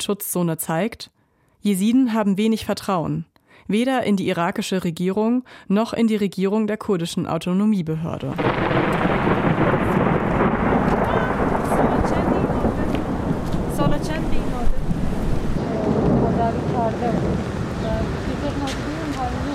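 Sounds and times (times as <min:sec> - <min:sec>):
speech: 0:00.0 - 0:10.0, 0:16.5 - 0:18.8
wind noise: 0:06.8 - 0:19.5
low rumbling thunder: 0:08.1 - 0:19.5
steady dense rain: 0:08.3 - 0:19.5.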